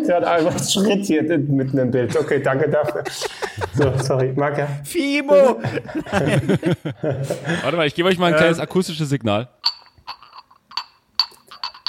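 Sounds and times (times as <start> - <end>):
speech: 0.1 - 9.8
laughter: 2.1 - 4.4, 5.4 - 7.9
glass objects clinking together: 9.6 - 11.8.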